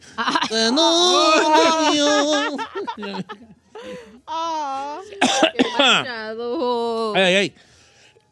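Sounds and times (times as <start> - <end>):
laughter: 0.2 - 4.0
speech: 0.2 - 7.6
man coughing and sputtering, choking on his own saliva: 0.4 - 3.3, 5.2 - 6.0
man making strained drawn-out vocal groans: 0.5 - 3.2.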